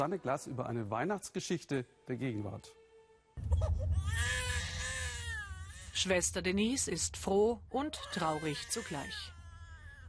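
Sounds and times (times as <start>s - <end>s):
speech: 0.0s - 2.8s, 6.0s - 9.4s
infant crying: 3.4s - 6.1s, 7.9s - 10.0s.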